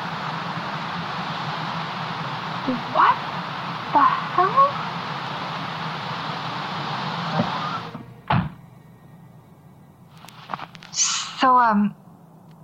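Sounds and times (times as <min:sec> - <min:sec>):
steady rushing noise: 0:00.0 - 0:11.6
speech: 0:02.6 - 0:04.7, 0:11.7 - 0:12.0
stuck car door being forced open with a heavy thunk: 0:08.2 - 0:08.6.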